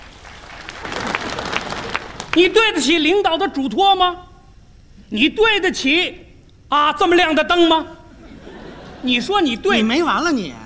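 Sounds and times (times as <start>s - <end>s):
audience applause at a live comedy stage show: 0.0s - 2.4s
speech: 2.4s - 4.3s, 5.1s - 8.0s, 9.0s - 10.6s
laughter: 8.2s - 9.8s.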